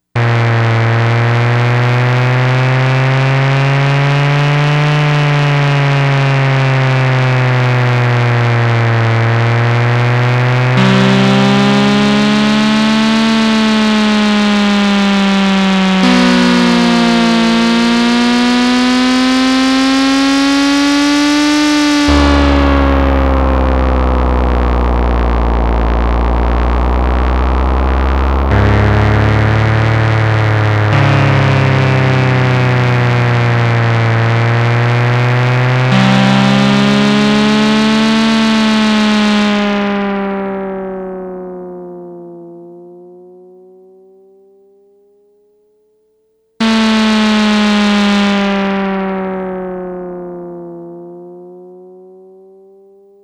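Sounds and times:
racing car sound on a Yamaha DX100 synthesizer: 0:00.2 - 0:43.1, 0:46.6 - 0:51.6.

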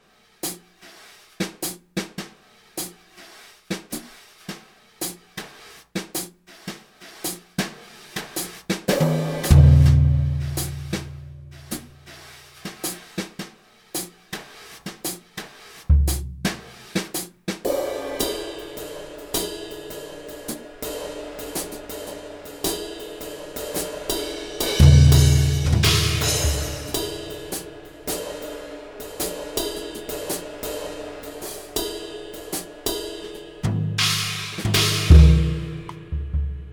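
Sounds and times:
Roland SRX-01 dynamic brush drum kit: 0:00.3 - 0:36.7.

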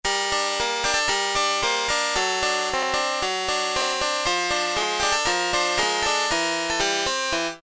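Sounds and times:
light harpsichord synth patch on a Yamaha TX81Z: 0:00.1 - 0:07.6.

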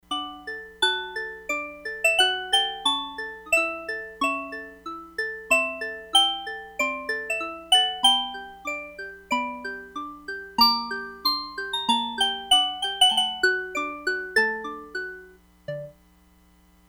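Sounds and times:
synth bells from a Crumar Bit 99: 0:00.1 - 0:15.9.

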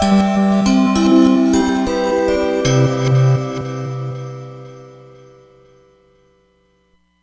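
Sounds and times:
Roland Fantom XR synthesizer sound: 0:00.1 - 0:05.7.

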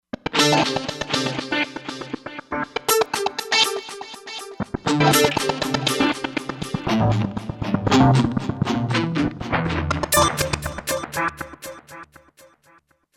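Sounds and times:
guitar sound on a Roland Fantom XR synthesizer: 0:00.2 - 0:12.2.

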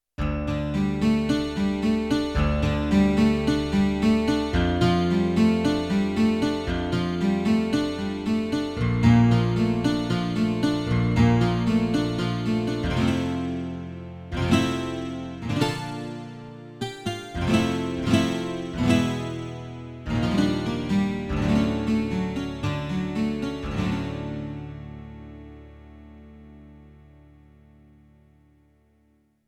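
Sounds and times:
18-string acoustic guitar on a Yamaha TX16W: 0:00.2 - 0:29.0.

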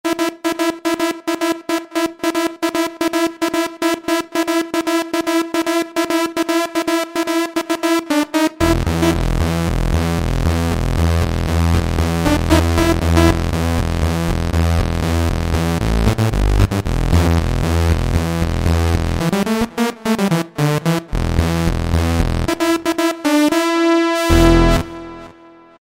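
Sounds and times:
strings-brass patch on Cheetah MS6 synthesizer: 0:00.1 - 0:25.7.

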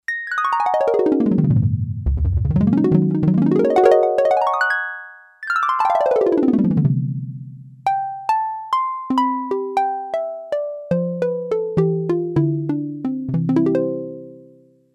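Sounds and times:
synthesizer harp factory preset voice: 0:00.1 - 0:14.8.

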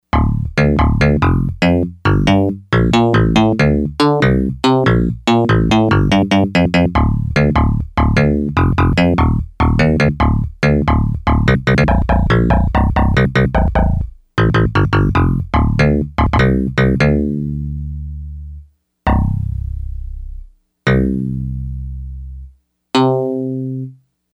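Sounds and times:
electric bass from Yamaha DX100 synthesizer factory patches: 0:00.1 - 0:23.8.

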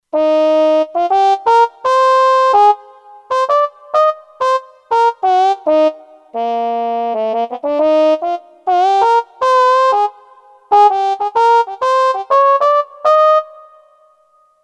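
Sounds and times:
straight mute trumpet on a synthesizer: 0:00.2 - 0:14.2.

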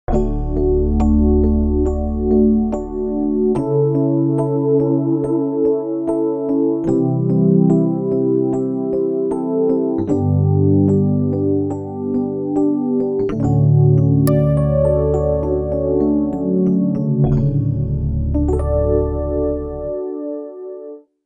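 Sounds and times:
Rhodes electric piano patch: 0:00.1 - 0:21.0.

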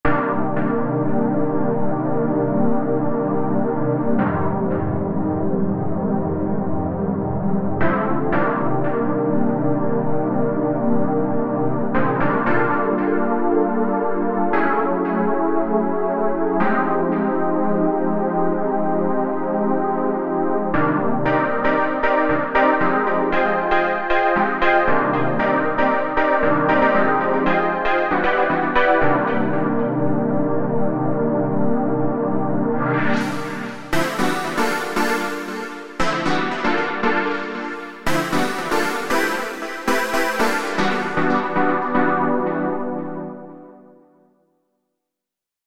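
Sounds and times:
synth texture chords: 0:00.0 - 0:44.0.

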